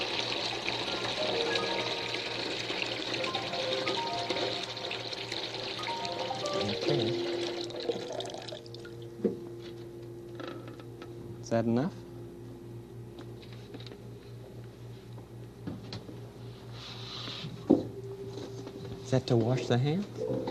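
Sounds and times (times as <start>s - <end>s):
cold water pouring into a big pail: 0.0s - 8.9s
speech: 11.5s - 12.0s, 19.1s - 20.4s.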